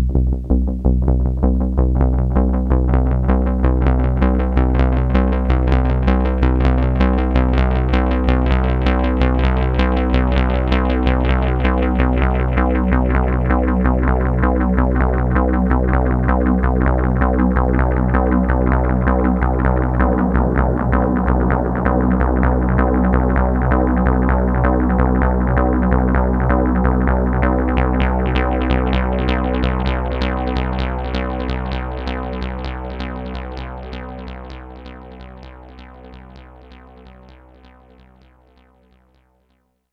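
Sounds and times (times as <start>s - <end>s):
synthesizer: 0.2s - 39.0s.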